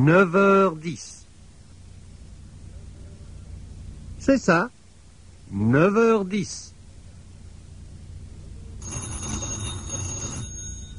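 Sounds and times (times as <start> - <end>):
speech: 0.0 - 1.2, 4.2 - 4.8, 5.5 - 6.7
telephone bell ringing: 8.8 - 10.9.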